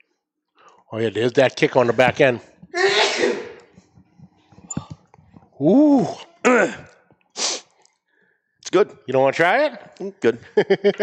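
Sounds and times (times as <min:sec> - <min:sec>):
speech: 0:00.9 - 0:02.5, 0:05.6 - 0:06.8, 0:08.8 - 0:11.0
person sneezing after smelling a limited-release product: 0:02.8 - 0:03.7, 0:05.9 - 0:07.7
laughter: 0:10.3 - 0:11.0.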